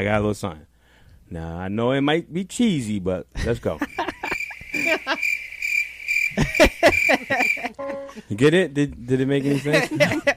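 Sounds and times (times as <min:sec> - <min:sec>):
speech: 0:00.0 - 0:00.7, 0:01.3 - 0:04.0, 0:06.6 - 0:10.3
laughter: 0:03.7 - 0:05.2, 0:06.3 - 0:08.3, 0:09.4 - 0:10.3
crickets chirping in a steady high trill: 0:03.8 - 0:07.8.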